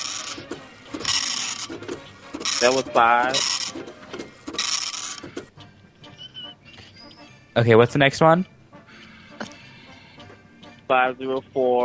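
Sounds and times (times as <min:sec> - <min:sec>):
dot matrix printer printing: 0:00.0 - 0:05.5
speech: 0:02.6 - 0:03.5, 0:07.6 - 0:08.6, 0:10.9 - 0:11.8.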